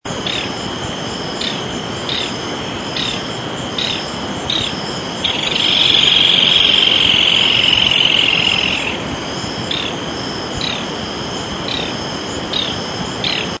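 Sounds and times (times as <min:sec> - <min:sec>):
common donkey bird singing: 0:00.1 - 0:13.5.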